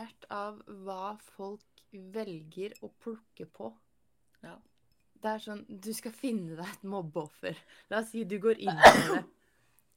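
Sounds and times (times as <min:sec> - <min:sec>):
speech: 0:00.3 - 0:09.4
person sneezing: 0:08.8 - 0:09.2.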